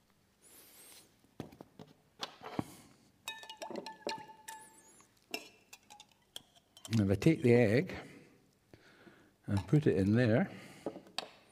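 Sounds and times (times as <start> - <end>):
spoon stirring salt into a glass of water: 3.3 - 7.5, 9.5 - 9.9
speech: 7.0 - 8.1, 9.5 - 10.6.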